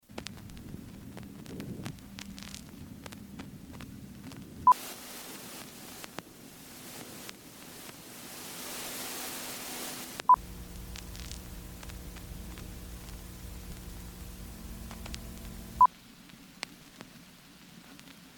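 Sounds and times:
lo-fi vinyl static and crackle: 0.0s - 18.3s
low hum: 10.2s - 15.9s
buzzing tonal drone: 10.3s - 15.9s
sharp clicks: 10.3s - 15.9s.

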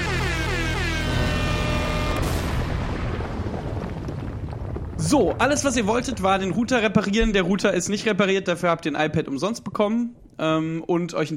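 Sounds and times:
blaring brassy chord of a podcast segment jingle: 0.0s - 2.8s
heavy booming crash of a podcast segment jingle: 0.7s - 8.5s
speech: 5.1s - 11.3s.

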